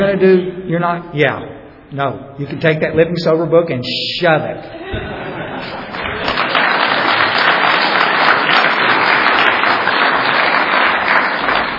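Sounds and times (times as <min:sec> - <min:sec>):
speech: 0:00.0 - 0:05.9
laughter: 0:04.7 - 0:07.4
sizable audience applauding: 0:05.4 - 0:11.7.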